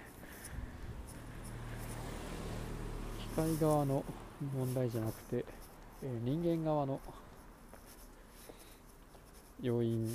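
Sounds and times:
faint broadband road noise: 0.0s - 10.1s
car approaching outside with low engine rumble: 0.2s - 7.8s
speech: 3.4s - 7.3s, 9.6s - 10.1s.

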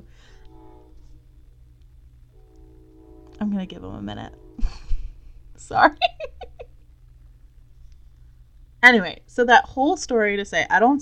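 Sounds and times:
train rumbling past: 0.0s - 6.1s
speech: 3.6s - 4.8s, 5.6s - 6.3s, 8.8s - 11.0s
laughter: 5.7s - 6.8s.

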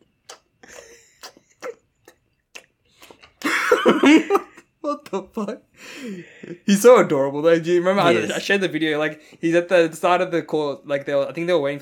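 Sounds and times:
person imitating a man chewing with wet mouth noises: 0.0s - 3.5s
speech: 3.8s - 11.8s.

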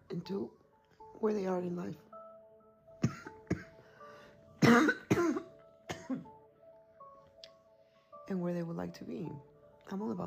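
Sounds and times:
speech: 0.1s - 0.6s, 1.2s - 2.0s, 8.3s - 10.2s
person with a three-week cough coughing with sharp hacking bursts: 3.0s - 3.8s, 4.6s - 6.4s.

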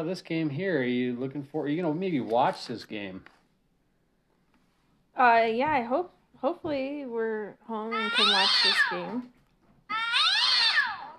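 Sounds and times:
speech: 0.0s - 3.4s, 5.2s - 9.4s
cat yowling: 7.9s - 9.2s, 9.9s - 11.1s.

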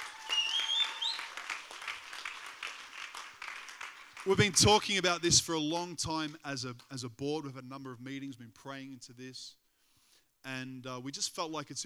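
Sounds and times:
brief high whistle: 0.0s - 1.4s
large crowd clapping and cheering: 0.0s - 4.9s
speech: 4.2s - 9.6s, 10.4s - 11.8s.

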